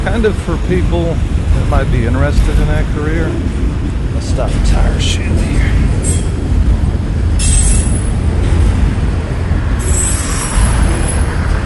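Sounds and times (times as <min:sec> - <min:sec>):
train rumbling past with a heavy steady roar: 0:00.0 - 0:11.6
speech: 0:00.1 - 0:05.8
high metallic train wheel squeals: 0:07.4 - 0:08.2, 0:09.8 - 0:11.3.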